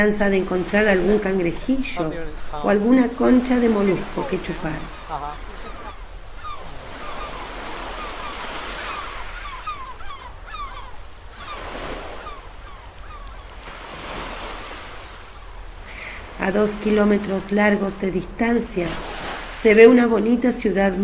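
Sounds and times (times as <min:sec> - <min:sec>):
speech: 0:00.0 - 0:05.5, 0:16.5 - 0:21.0
gentle waves lapping at the shore: 0:00.0 - 0:21.0.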